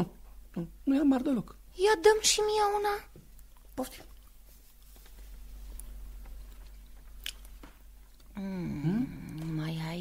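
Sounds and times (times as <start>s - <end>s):
speech: 0.0s - 3.1s, 3.8s - 4.1s, 8.4s - 9.2s
chewing with crunchy bites: 3.3s - 8.4s.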